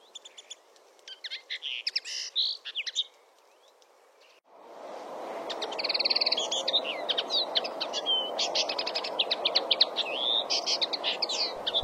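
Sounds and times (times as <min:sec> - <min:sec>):
Common linnet singing a lively twittering phrase: 0:00.0 - 0:04.4, 0:05.5 - 0:11.8.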